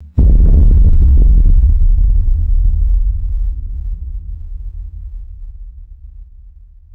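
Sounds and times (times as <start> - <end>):
deep cinematic bass hit and rumble, designed: 0.0 - 6.9.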